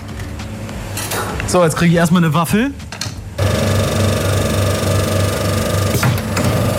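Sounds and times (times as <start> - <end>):
speech: 1.5 - 2.8
coin-operated soft-serve ice cream vending machine whirring: 3.4 - 6.7.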